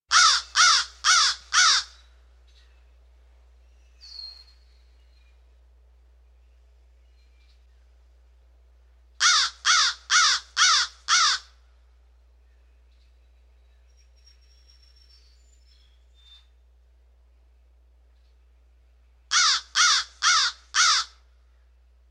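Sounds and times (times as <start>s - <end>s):
crow calling: 0.1s - 2.1s, 9.2s - 11.5s, 19.3s - 21.2s.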